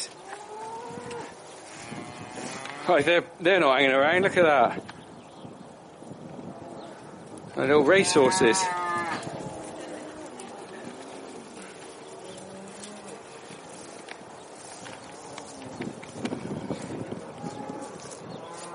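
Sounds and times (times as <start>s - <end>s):
young cattle lowing: 0.0s - 3.0s, 6.0s - 18.7s
hooves of young cattle on hard ground: 0.0s - 18.7s
outdoor bustle: 0.0s - 18.7s
speech: 2.9s - 4.9s, 7.6s - 8.8s.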